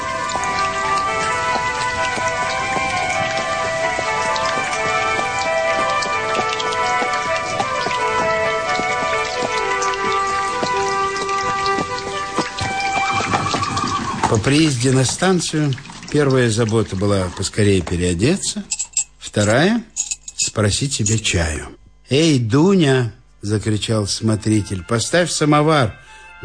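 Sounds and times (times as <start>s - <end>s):
heavy rain pouring on a road near a country post station: 0.0s - 16.8s
speech: 14.3s - 18.8s, 19.4s - 20.0s, 20.6s - 26.4s.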